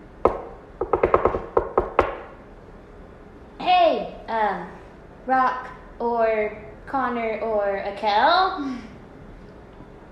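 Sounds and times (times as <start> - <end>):
knocking on a door: 0.2 - 2.3
speech: 5.3 - 8.9.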